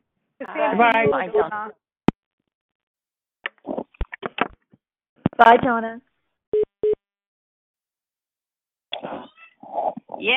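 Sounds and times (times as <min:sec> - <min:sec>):
speech: 0:00.4 - 0:01.8, 0:05.4 - 0:06.1, 0:09.0 - 0:10.3
short electronic beeps from a mobile phone: 0:06.6 - 0:07.0.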